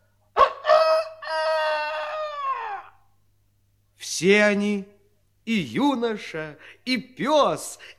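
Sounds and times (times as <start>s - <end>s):
rooster crowing: 0.4s - 3.0s
speech: 4.2s - 4.9s, 5.5s - 7.9s.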